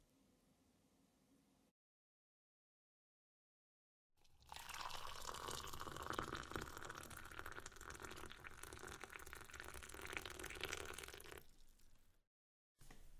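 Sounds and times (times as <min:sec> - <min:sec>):
water pouring into a glass: 0:04.2 - 0:12.0.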